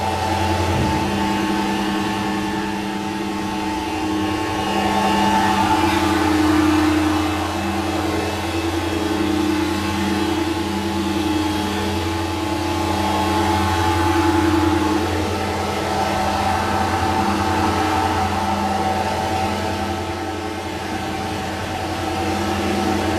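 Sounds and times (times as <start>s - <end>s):
assembly conveyor moving close: 0.0s - 23.1s.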